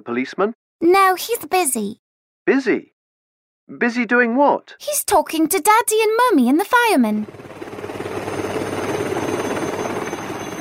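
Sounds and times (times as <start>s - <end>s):
speech: 0.0s - 2.9s, 3.7s - 7.6s
helicopter rotor chopping while flying and landing: 6.2s - 10.5s
helicopter engine whine: 7.2s - 10.5s.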